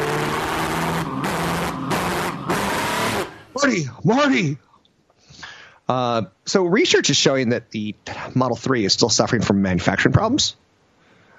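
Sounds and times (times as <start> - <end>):
time-travel car engine revving: 0.0 - 3.6
speech: 3.6 - 4.7, 5.9 - 10.6.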